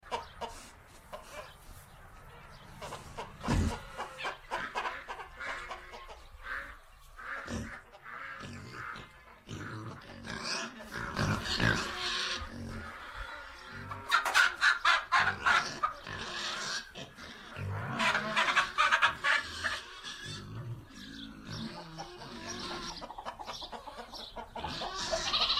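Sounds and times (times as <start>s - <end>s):
chickens in a farm barn interior: 0.0s - 25.5s
pigs in a farm barn interior: 2.5s - 25.5s.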